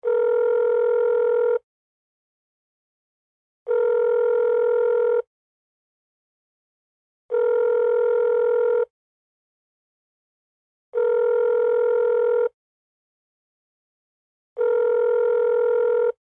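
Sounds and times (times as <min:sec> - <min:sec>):
telephone speakerphone ringing: 0:00.0 - 0:01.6, 0:03.7 - 0:05.3, 0:07.3 - 0:08.9, 0:11.0 - 0:12.6, 0:14.6 - 0:16.2.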